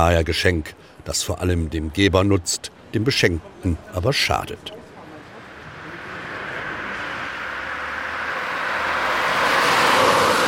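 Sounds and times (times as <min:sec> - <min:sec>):
speech: 0:00.0 - 0:04.8
single vehicle engine and tyre noise on a village street: 0:02.7 - 0:10.4.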